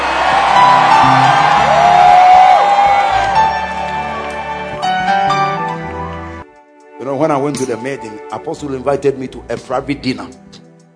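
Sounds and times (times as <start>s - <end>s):
large church audience shouting and cheering: 0.0s - 5.8s
individual voices whooping: 0.1s - 3.4s
speech: 7.3s - 10.4s.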